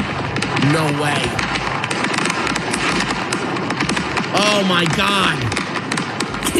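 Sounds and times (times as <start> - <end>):
fireworks cargo exploding in a truck container on a highway in Tennessee: 0.0 - 6.5
speech: 0.6 - 1.5, 4.4 - 5.6.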